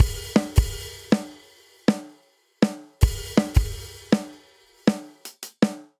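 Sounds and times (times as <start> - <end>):
energetic pop drum breakdown: 0.0 - 5.9.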